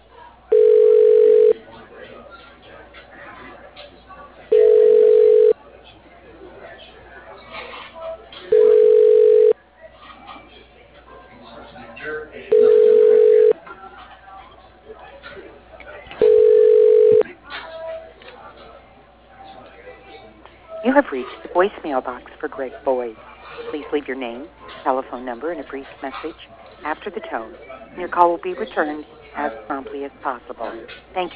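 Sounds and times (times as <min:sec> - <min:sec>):
low murmur of noise: 0:00.0 - 0:31.3
telephone line ringing while a call is transferred to an office extension: 0:00.5 - 0:01.6, 0:04.5 - 0:05.6, 0:08.5 - 0:09.6, 0:12.5 - 0:13.6, 0:16.2 - 0:17.2
speech: 0:21.9 - 0:31.3.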